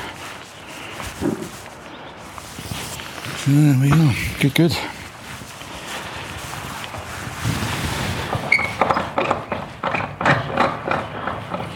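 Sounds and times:
running water hiss from a tap: 0:00.0 - 0:05.8
speech: 0:03.4 - 0:04.9
knocks and clunks from the tap handle and pipes: 0:08.4 - 0:11.7.

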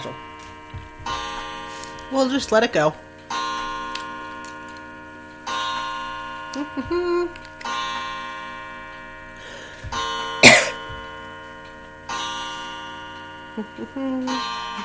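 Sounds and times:
clock striking the hour: 0:00.0 - 0:14.8
speech: 0:02.1 - 0:03.0, 0:06.8 - 0:07.4, 0:13.6 - 0:14.6
person coughing: 0:10.4 - 0:10.9.

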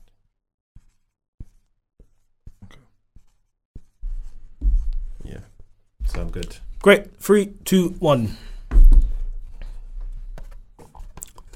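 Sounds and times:
pen scratching on paper writing a quiz answer: 0:00.0 - 0:06.3
speech: 0:05.3 - 0:05.6, 0:06.2 - 0:08.5.

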